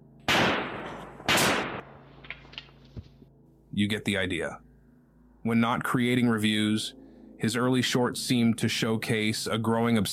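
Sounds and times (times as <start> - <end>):
gunshots: 0.3 - 2.6
speech: 3.8 - 4.7, 5.4 - 10.1.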